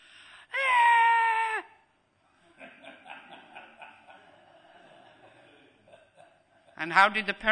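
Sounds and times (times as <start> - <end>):
voice imitating a frustrated child screaming: 0.6 - 1.8
laughter: 2.4 - 7.0
speech: 6.8 - 7.5.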